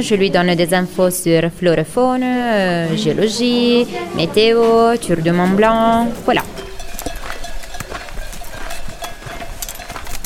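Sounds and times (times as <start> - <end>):
speech: 0.0 - 6.7
horse and donkey shuffling: 3.2 - 10.2
horse and donkey hoof knocks: 4.6 - 10.2.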